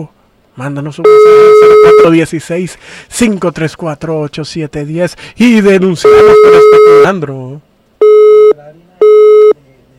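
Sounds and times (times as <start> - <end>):
speech: 0.0 - 7.6
telephone busy tone after a dropped call: 1.0 - 2.2, 6.0 - 7.2, 8.0 - 9.9.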